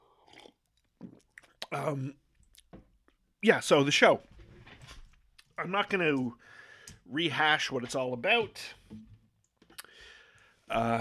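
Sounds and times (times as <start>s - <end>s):
person sipping a drink: 0.0s - 2.6s, 9.7s - 10.0s
person swallowing: 0.2s - 2.8s
speech: 1.1s - 2.2s, 3.4s - 4.3s, 5.6s - 9.1s, 10.7s - 11.0s.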